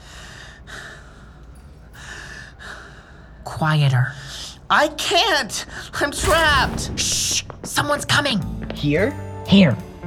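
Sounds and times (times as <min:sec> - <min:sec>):
heavy labored breathing: 0:00.0 - 0:03.5
speech: 0:03.4 - 0:10.0.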